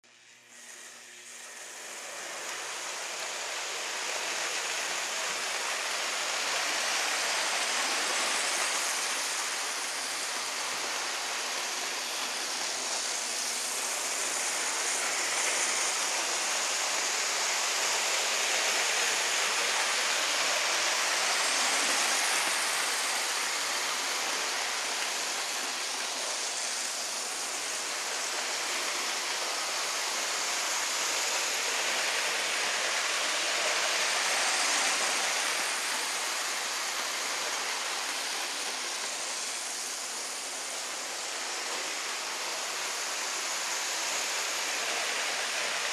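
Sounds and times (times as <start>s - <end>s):
toy steam train on track: 0.0s - 45.9s.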